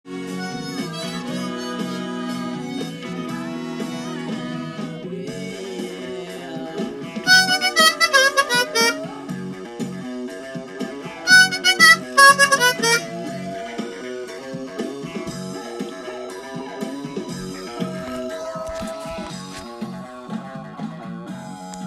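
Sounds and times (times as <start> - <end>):
guitar: 0.1 - 21.8
harmonica: 0.2 - 4.8, 7.3 - 9.2, 11.3 - 13.4.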